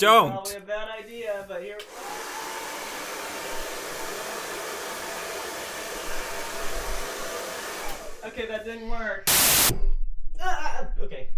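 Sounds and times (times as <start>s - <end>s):
speech: 0.0s - 2.2s, 8.2s - 11.3s
hair dryer blowing: 1.9s - 8.0s, 9.3s - 9.7s.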